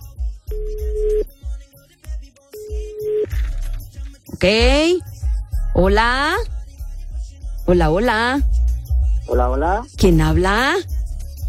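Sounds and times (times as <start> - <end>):
thumping low beat: 0.0 - 1.6, 4.4 - 11.4
telephone line tone: 2.6 - 3.3
speech: 4.4 - 5.1, 5.8 - 6.5, 7.7 - 8.5, 9.3 - 11.0.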